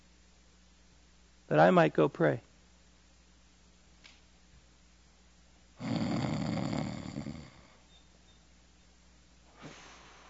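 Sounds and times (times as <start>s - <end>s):
speech: 1.5s - 2.5s
person imitating snoring: 5.8s - 7.8s
faint breath: 9.5s - 10.2s.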